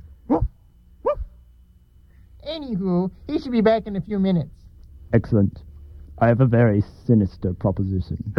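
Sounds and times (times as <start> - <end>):
speech: 0.3 - 0.5, 2.6 - 8.3
dog barking with short sharp woofs: 0.3 - 1.4.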